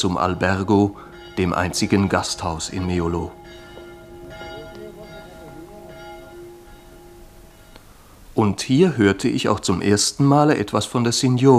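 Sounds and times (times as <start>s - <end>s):
speech: 0.0s - 3.6s, 8.4s - 11.5s
small bell ringing on a village piazza in Meolo Italy: 0.0s - 8.2s
constant hiss: 0.0s - 11.5s.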